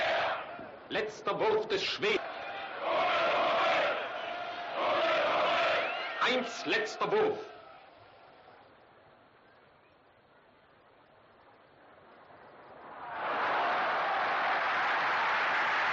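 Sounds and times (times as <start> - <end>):
large frenzied crowd roaring and shouting: 0.0 - 0.7, 2.0 - 7.8, 12.9 - 15.9.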